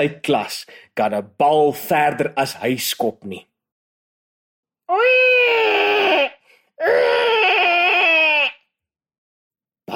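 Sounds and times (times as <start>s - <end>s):
speech: 0.0s - 3.5s, 4.9s - 5.8s, 6.8s - 7.2s
person crying: 4.9s - 8.6s.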